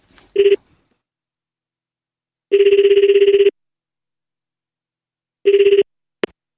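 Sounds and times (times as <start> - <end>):
ringback tone of an outgoing phone call: 0.4 - 0.6, 2.5 - 3.6, 5.4 - 5.9.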